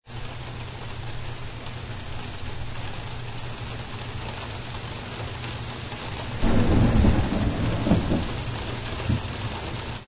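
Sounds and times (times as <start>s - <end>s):
thunderstorm: 6.4s - 9.8s.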